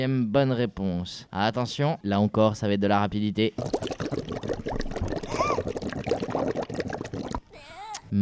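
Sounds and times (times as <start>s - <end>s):
speech: 0.0s - 4.5s
water bubbling and gurgling: 3.5s - 7.6s.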